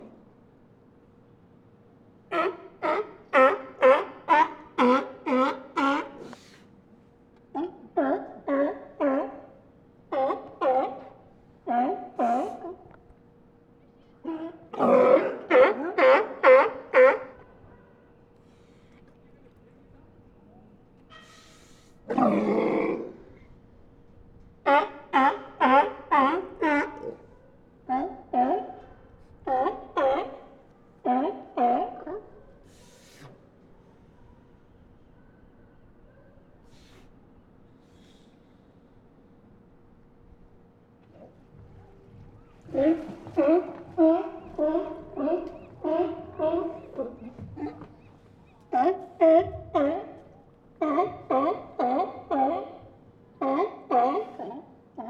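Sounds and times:
group of sea lions barking: 2.3 - 6.5, 7.5 - 12.9, 14.2 - 17.7, 24.6 - 32.9, 42.1 - 55.0.

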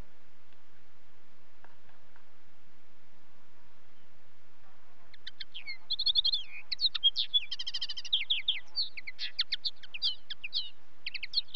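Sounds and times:
Common linnet twitter: 5.1 - 11.5.

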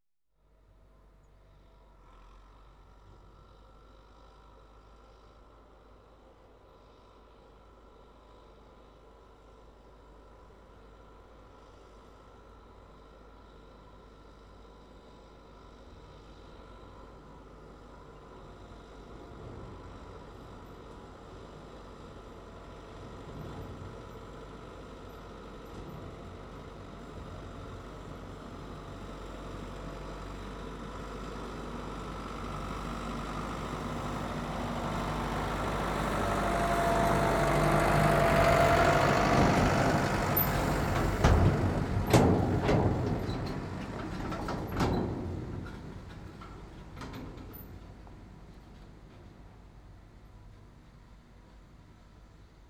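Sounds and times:
Ford 7610 tractor engine: 25.4 - 49.1.

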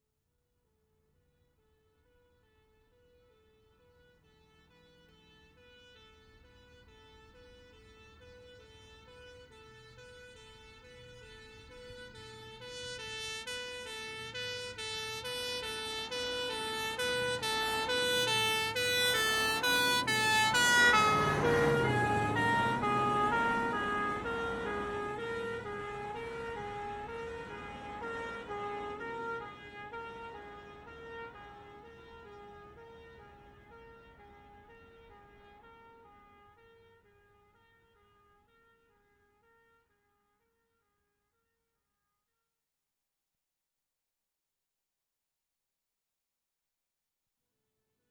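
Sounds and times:
fire engine passing right to left: 4.8 - 36.6.

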